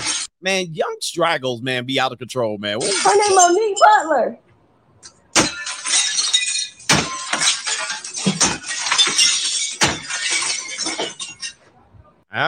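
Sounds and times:
glass breaking and shattering at an apartment: 0.0 - 0.3, 2.8 - 4.0, 5.0 - 11.7
speech: 0.4 - 4.4
glass shards tinkling: 2.8 - 4.1, 5.0 - 11.7.

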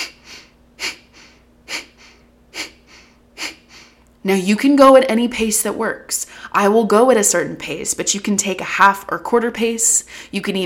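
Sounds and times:
rhythmic breath of fire breathing with short inhales and powerful exhales: 0.0 - 4.1
speech: 4.2 - 10.6.

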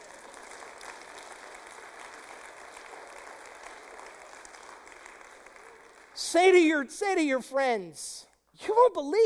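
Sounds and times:
church audience clapping at a Sunday service: 0.0 - 7.4
speech: 6.2 - 9.2.

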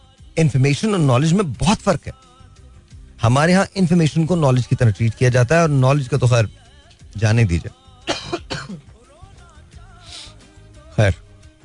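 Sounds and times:
speech: 0.4 - 2.3, 3.2 - 7.8, 11.0 - 11.2
coughing: 8.0 - 9.0
throat clearing: 8.1 - 8.9.

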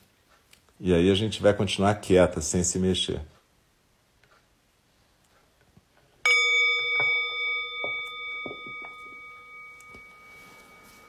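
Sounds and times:
speech: 0.8 - 3.4
meditation bell ringing: 6.2 - 11.0.

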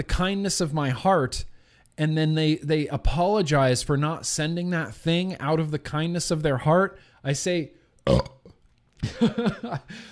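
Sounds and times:
speech: 0.0 - 8.4, 9.0 - 10.1
person burping: 8.0 - 8.6
laughter: 9.0 - 9.9.

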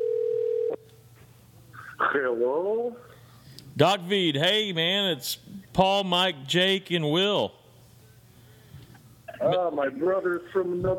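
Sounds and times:
telephone dial tone: 0.0 - 0.8
speech: 2.1 - 3.2, 3.8 - 7.6, 9.4 - 10.9.

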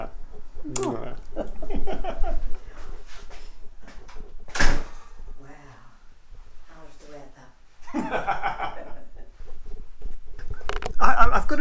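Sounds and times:
laughter: 0.0 - 3.1, 7.8 - 9.8
front door unlatched and swung open: 0.0 - 5.4
voices: 0.0 - 7.7, 8.3 - 11.5
bright knock or rattle: 4.5 - 5.2.

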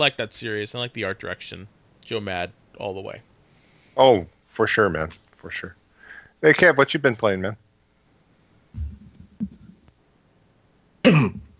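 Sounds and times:
speech: 0.0 - 3.3, 4.0 - 5.8, 6.4 - 7.6
person clearing throat: 11.0 - 11.5
person coughing: 11.0 - 11.5.

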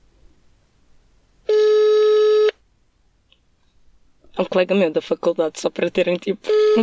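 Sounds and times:
telephone ringback tone on an outgoing call: 1.5 - 2.6, 6.5 - 6.8
speech: 4.4 - 6.8.

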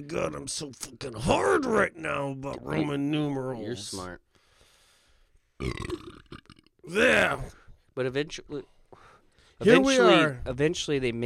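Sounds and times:
speech: 0.0 - 4.3, 5.6 - 8.8, 9.6 - 11.2
person burping into the microphone: 5.6 - 7.5.

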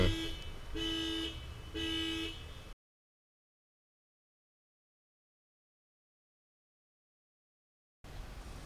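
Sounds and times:
bus alarm honking with a harsh buzzy tone: 0.0 - 2.7.

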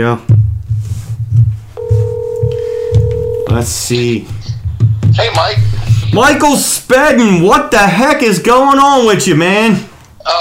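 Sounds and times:
speech: 0.0 - 0.3, 3.5 - 4.4, 5.2 - 10.4
low pulsing beat: 0.3 - 6.1
electronic telephone dialing tone as a phone call is placed: 1.8 - 3.5.

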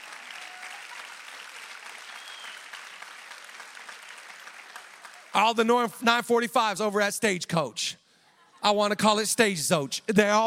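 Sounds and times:
crowd applauding: 0.0 - 5.9
speech: 5.4 - 8.0, 8.6 - 10.4.

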